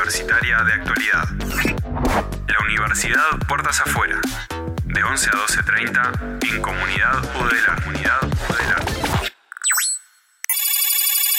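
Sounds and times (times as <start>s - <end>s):
speech: 0.1s - 9.2s
bright sustained warbling ring of an incoming phone call: 9.6s - 11.3s
short electronic chirps: 9.6s - 11.3s.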